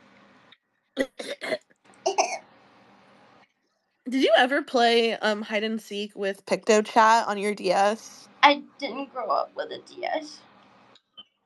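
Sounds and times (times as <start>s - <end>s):
harsh rough coughs: 1.0s - 2.4s
speech: 4.1s - 10.5s.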